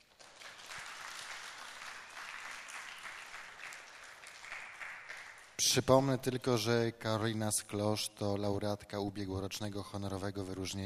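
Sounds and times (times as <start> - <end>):
audience applause at a song festival concert: 0.0 - 5.6
speech: 5.6 - 10.8.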